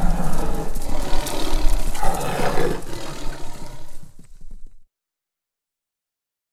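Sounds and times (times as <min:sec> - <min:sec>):
tigers roaring: 0:00.0 - 0:04.4.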